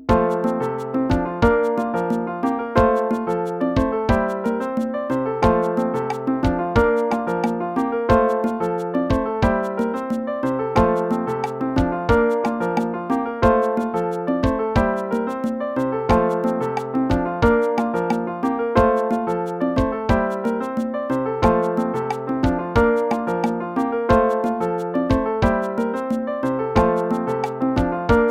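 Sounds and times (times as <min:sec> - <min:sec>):
musical accompaniment: 0:00.1 - 0:28.2.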